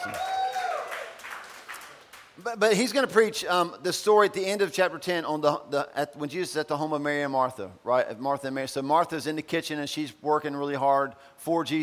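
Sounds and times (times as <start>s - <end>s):
crowd applauding: 0.0s - 2.4s
speech: 2.4s - 11.8s.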